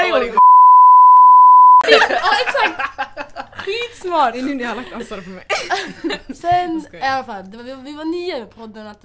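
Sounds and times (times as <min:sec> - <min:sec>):
loud steady censor beep covering a name: 0:00.4 - 0:01.8
laughter: 0:01.8 - 0:06.5
speech: 0:04.1 - 0:09.0.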